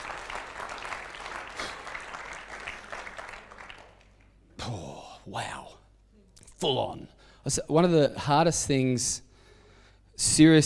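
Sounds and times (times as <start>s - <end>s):
crowd applauding: 0.0s - 4.3s
speech: 4.7s - 5.8s, 6.6s - 9.3s, 10.2s - 10.6s.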